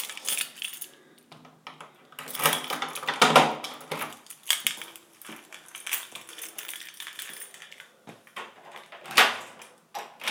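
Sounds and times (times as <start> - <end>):
keys jangling and scraping in an apartment door lock: 0.0 - 1.1, 2.2 - 8.0.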